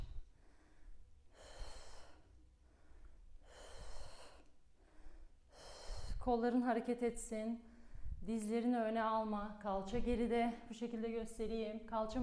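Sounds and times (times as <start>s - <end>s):
heavy breathing during a workout after squats: 0.0s - 6.3s
speech: 6.3s - 12.2s.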